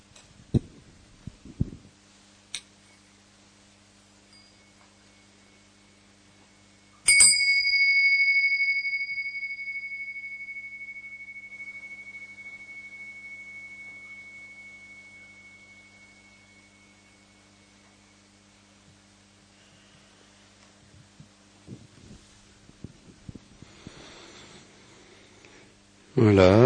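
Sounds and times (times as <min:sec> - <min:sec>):
gong stroke ringing: 0:07.0 - 0:18.0
speech: 0:26.2 - 0:26.6.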